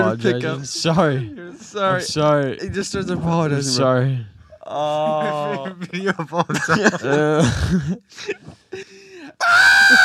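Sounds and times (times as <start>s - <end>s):
speech: 0.1s - 8.9s
laughter: 4.7s - 9.0s, 9.7s - 10.0s
strained wailing human voice: 9.4s - 10.0s.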